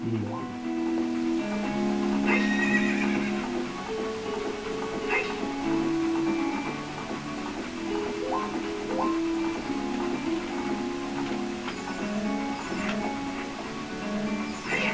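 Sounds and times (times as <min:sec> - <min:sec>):
horse hooves clip-clopping: 0:00.0 - 0:14.9
horse whinnying in long wavering cries: 0:02.2 - 0:03.6, 0:05.1 - 0:05.5, 0:14.6 - 0:14.9.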